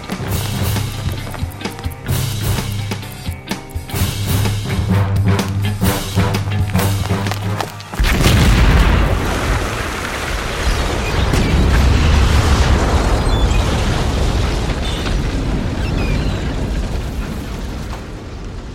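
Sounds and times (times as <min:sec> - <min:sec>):
crackling debris: 0:00.0 - 0:18.7
explosion: 0:08.0 - 0:18.7.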